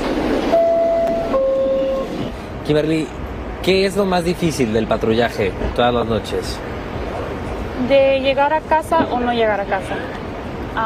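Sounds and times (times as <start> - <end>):
subway train riding along: 0.0 - 10.8
subway train sustained squealing tone: 0.5 - 2.3
speech: 2.7 - 6.7, 7.8 - 10.2.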